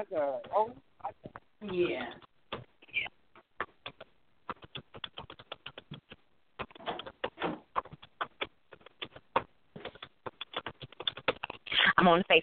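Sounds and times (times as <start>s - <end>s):
speech: 0.0s - 2.3s, 12.0s - 12.4s
rapid uneven clacking of keys on a keyboard: 3.6s - 11.8s.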